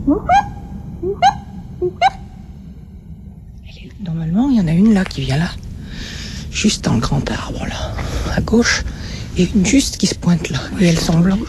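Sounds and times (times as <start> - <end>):
owl calling in the distance: 0.0 - 2.6
low rumble: 0.0 - 11.4
speech: 5.0 - 5.7, 6.6 - 11.4.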